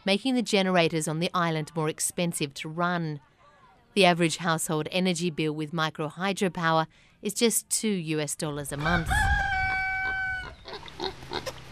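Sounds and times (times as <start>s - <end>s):
speech: 0.0s - 3.3s, 4.0s - 9.3s
pigs grunting on Sumba island in Indonesia: 10.5s - 11.7s.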